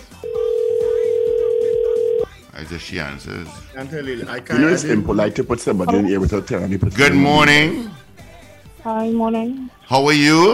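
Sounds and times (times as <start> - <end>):
phone ringback tone on an outgoing call: 0.1 - 2.3
speech: 2.7 - 8.0, 8.8 - 10.5.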